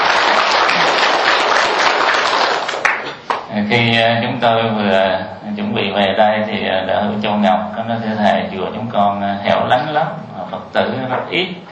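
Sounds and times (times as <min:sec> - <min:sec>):
audience applauding: 0:00.0 - 0:03.5
speech: 0:03.7 - 0:11.7.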